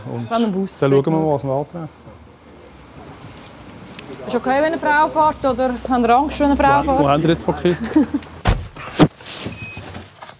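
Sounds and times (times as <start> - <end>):
speech: 0.1 - 2.2, 4.2 - 8.3
laughter: 7.3 - 8.4
police van doors shutting: 8.4 - 10.3
rattle and rustle: 8.8 - 10.3.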